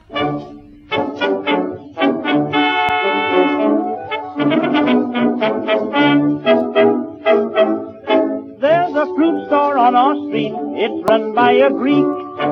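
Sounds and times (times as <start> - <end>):
small band accompaniment on an old 1920s recording: 0.0 - 12.5
speech: 0.1 - 0.7, 10.0 - 12.5
man singing a 1920s popular song: 8.6 - 12.5.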